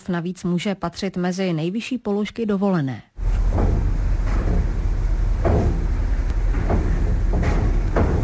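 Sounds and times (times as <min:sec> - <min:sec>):
speech: 0:00.1 - 0:03.1
deep steady ferry engine rumble at a car ferry port: 0:03.2 - 0:08.2
heavy metallic clunks at a car ferry port: 0:03.2 - 0:08.2.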